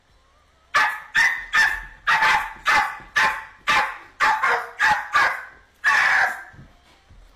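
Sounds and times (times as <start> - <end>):
puppy barking: 0.8 - 6.6.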